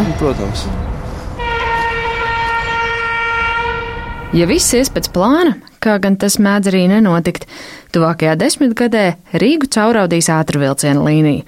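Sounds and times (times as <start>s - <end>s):
train passing on a railway: 0.0s - 5.5s
speech: 0.2s - 0.9s, 4.3s - 11.4s.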